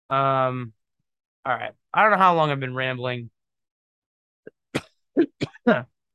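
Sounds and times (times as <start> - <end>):
speech: 0.1 - 0.8, 1.4 - 3.4, 4.7 - 5.9
harsh coughing: 4.5 - 5.9.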